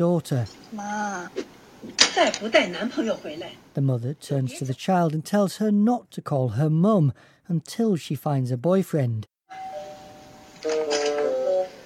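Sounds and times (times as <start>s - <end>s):
speech: 0.0s - 9.7s
doorbell chime ringing in a family home: 9.5s - 11.8s.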